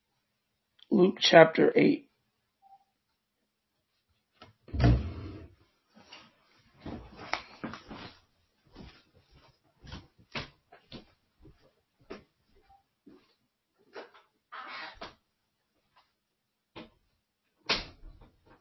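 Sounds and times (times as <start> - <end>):
speech: 0.9 - 2.0
heavy door shutting: 4.7 - 5.5.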